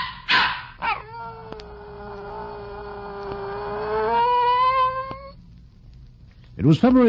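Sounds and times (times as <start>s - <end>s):
dog barking: 0.0s - 1.1s
dog howling: 0.0s - 5.4s
speech: 6.6s - 7.0s.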